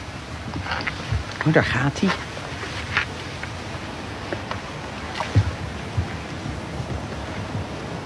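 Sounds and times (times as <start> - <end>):
flowing river water heard through hydrophone: 0.0 - 8.0
speech: 0.8 - 2.3.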